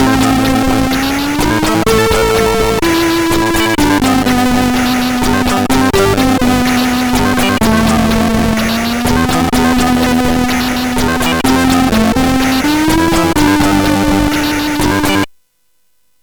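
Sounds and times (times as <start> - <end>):
chiptune music on SID CSG8580R5 chip: 0.0 - 15.3.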